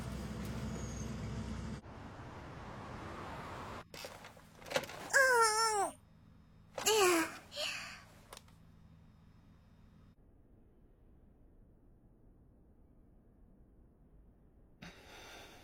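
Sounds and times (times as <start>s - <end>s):
bus air brakes squealing and hissing: 0.0s - 1.8s
bus engine rumble: 0.0s - 10.1s.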